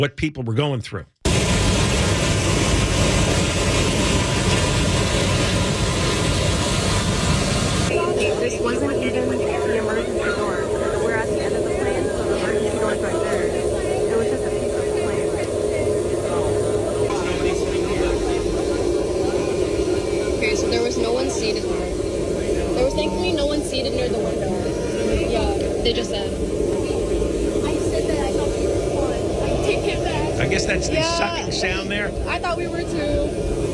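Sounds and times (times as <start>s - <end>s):
speech: 0.0s - 1.1s, 8.4s - 9.4s, 20.6s - 22.1s, 22.8s - 26.8s, 29.7s - 33.6s
airplane cabin noise in flight: 1.3s - 33.7s
voices murmuring: 7.9s - 33.7s.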